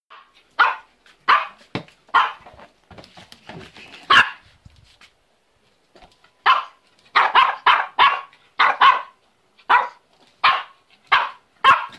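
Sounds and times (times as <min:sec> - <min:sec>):
dog: 0:00.1 - 0:02.6, 0:04.0 - 0:04.5, 0:06.4 - 0:11.9.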